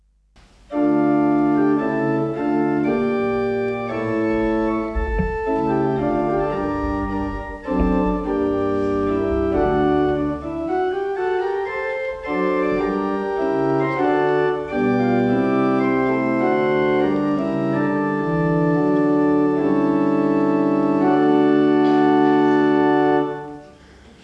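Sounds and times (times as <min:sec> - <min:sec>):
organ playing octave 4 in Assen: 0:00.5 - 0:23.9.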